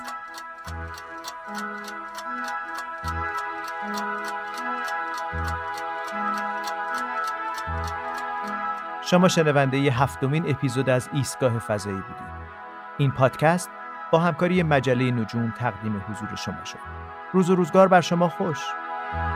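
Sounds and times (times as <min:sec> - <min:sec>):
clock ticking: 0:00.0 - 0:08.8
music with low bass notes: 0:00.0 - 0:19.3
speech: 0:00.9 - 0:02.0, 0:09.1 - 0:12.3, 0:13.0 - 0:19.3.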